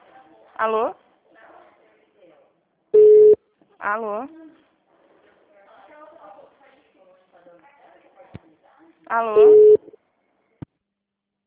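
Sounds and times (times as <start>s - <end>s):
speech: 0.6s - 1.0s, 3.8s - 4.4s, 9.1s - 9.8s
telephone line tone during call transfer: 3.0s - 3.4s, 9.4s - 9.8s.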